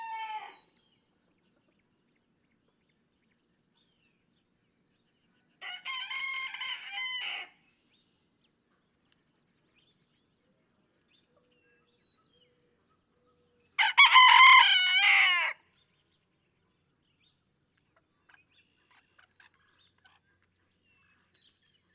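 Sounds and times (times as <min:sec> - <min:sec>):
red junglefowl rooster crowing in a barnyard in Kentucky: 0:00.0 - 0:00.6, 0:05.6 - 0:07.6, 0:13.8 - 0:15.6.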